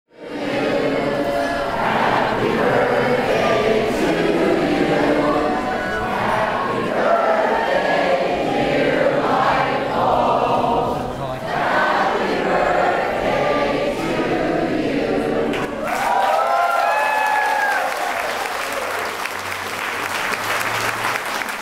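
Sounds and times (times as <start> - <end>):
crowd of over 200 people singing to a light bulb: 0.1 - 15.9
applause and cheering: 15.5 - 21.6.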